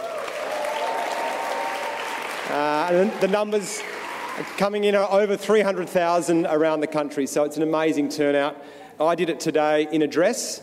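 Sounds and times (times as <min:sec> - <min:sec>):
faint cheering: 0:00.0 - 0:04.6
crowd applauding: 0:00.0 - 0:05.1
speech: 0:02.5 - 0:10.6.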